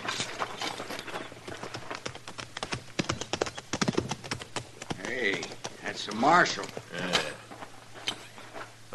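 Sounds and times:
several horses walking with hooves clip-clopping: 0.0s - 8.9s
speech: 6.0s - 7.3s.

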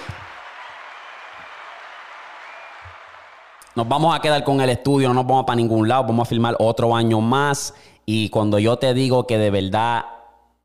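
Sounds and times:
applause of many hands clapping: 0.0s - 4.3s
speech: 3.8s - 10.2s.

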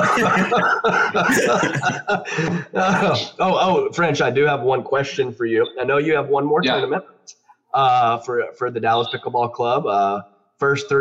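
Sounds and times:
person coughing: 0.0s - 3.2s
person chuckling: 0.0s - 3.4s
speech: 0.2s - 10.9s.

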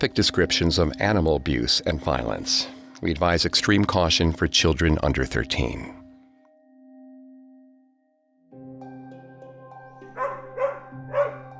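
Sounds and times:
speech: 0.0s - 6.0s
sustained musical backdrop with a soft low tone: 0.0s - 11.5s
dog barking: 10.1s - 11.5s.

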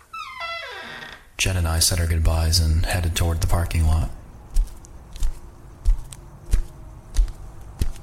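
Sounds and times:
speech: 1.4s - 4.2s
footsteps of people walking toward a parking lot: 4.4s - 8.0s.

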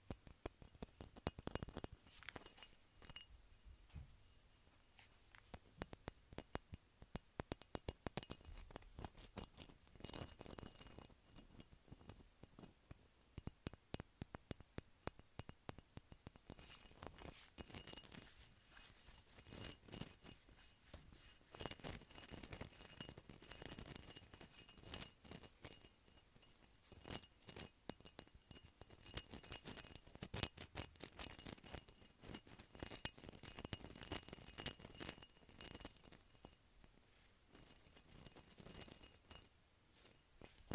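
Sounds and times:
fingertips tapping on bumpy glass surface: 0.0s - 3.4s, 5.3s - 36.9s, 37.5s - 40.7s.

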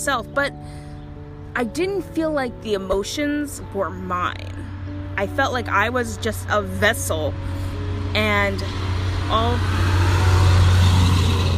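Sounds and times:
speech: 0.0s - 0.8s, 1.5s - 10.1s
broad road noise: 0.0s - 11.5s
heavy truck driving past outdoors: 6.8s - 11.5s.

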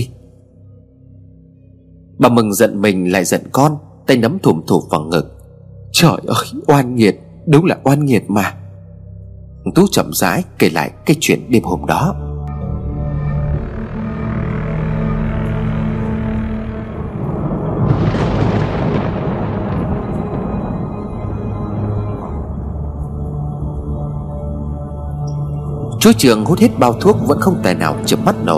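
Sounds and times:
droning background: 0.0s - 28.5s
speech: 2.2s - 5.4s, 6.0s - 8.6s, 9.6s - 12.3s, 26.0s - 28.5s
thunder rumbling and cracking at night: 13.7s - 23.3s.

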